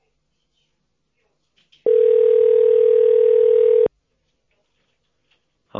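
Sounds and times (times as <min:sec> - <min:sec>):
telephone line tones during call transfer: 0:01.9 - 0:03.9.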